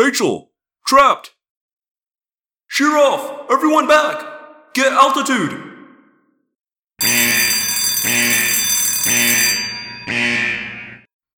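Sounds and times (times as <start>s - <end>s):
speech: 0.0s - 1.4s, 2.7s - 5.7s
loud harsh metallic alarm bell ringing: 7.0s - 11.1s.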